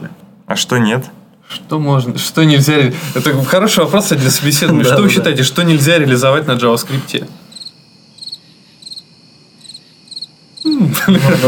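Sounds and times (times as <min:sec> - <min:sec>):
speech: 0:00.6 - 0:07.4
laughter: 0:04.1 - 0:05.4, 0:10.7 - 0:11.4
crickets chirping as a sound effect: 0:05.0 - 0:11.4.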